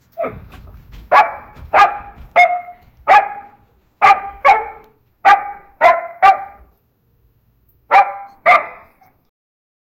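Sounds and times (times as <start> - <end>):
dog barking: 1.1 - 6.7, 7.9 - 9.2.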